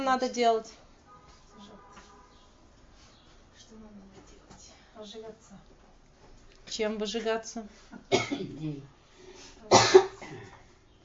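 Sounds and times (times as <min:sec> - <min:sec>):
speech: 0:00.1 - 0:00.8, 0:05.0 - 0:05.7, 0:06.7 - 0:09.0, 0:09.6 - 0:10.5
harsh coughing: 0:08.1 - 0:08.9, 0:09.7 - 0:10.6.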